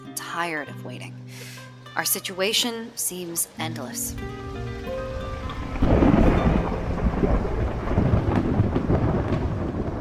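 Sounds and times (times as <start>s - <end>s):
speech: 0.4s - 4.6s
heavy monsoon rain: 2.9s - 9.9s
monsoon thunderstorm thunder rumbling: 5.1s - 9.9s.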